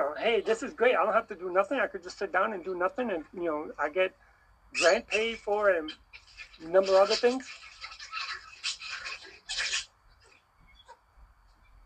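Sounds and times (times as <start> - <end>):
speech: 0.2 - 7.7
puppies yapping and yelping: 4.7 - 11.1.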